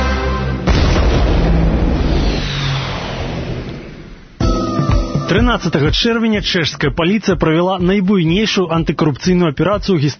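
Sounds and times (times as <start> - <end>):
firecracker bang: 0.6 - 4.4
speech: 5.3 - 10.1.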